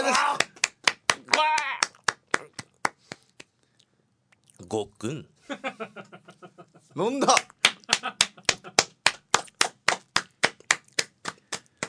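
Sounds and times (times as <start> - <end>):
hands clapping: 0.1 - 3.5, 7.3 - 11.8
speech: 4.7 - 6.1, 7.0 - 8.2.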